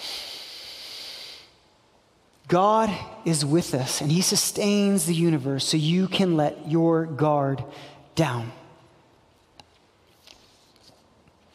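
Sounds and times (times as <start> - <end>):
slow deep breath: 0.0 - 1.6
speech: 2.5 - 8.6.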